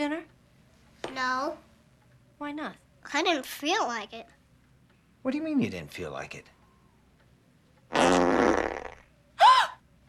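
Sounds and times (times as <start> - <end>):
speech: 0.0 - 0.4, 1.2 - 1.7, 2.4 - 4.4, 5.2 - 6.6, 7.9 - 8.4
fart machine sound effect: 7.9 - 9.1.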